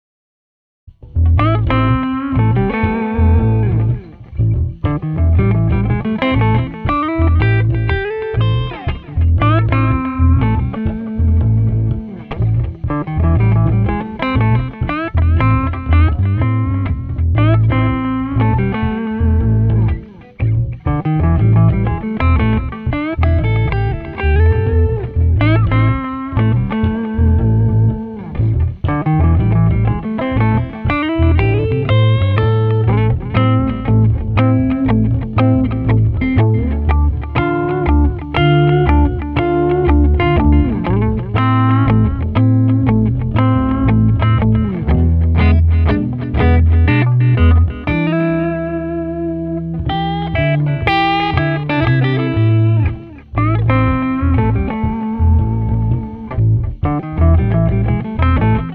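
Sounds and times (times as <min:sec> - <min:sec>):
funky guitar combo drive riff at 120 BPM: 0:00.9 - 0:58.7.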